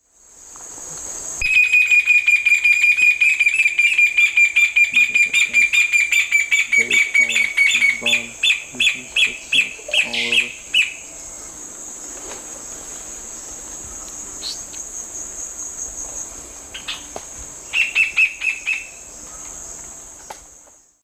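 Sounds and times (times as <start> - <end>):
Furnarius torridus song and calls in the eastern lowlands of South America: 1.4 - 11.5, 17.7 - 19.6.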